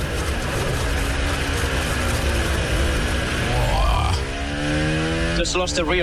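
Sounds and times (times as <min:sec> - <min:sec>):
racing car engine revving while drifting at a corner: 0:00.0 - 0:06.0.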